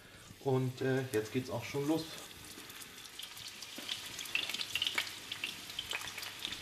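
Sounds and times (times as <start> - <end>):
frozen mini burgers frying in a hot pan: 0.0 - 6.6
speech: 0.4 - 2.3.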